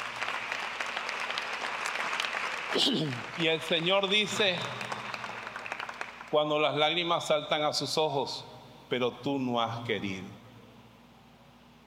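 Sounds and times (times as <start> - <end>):
audience applauding: 0.0 - 6.6
speech: 2.8 - 4.8, 6.3 - 10.4.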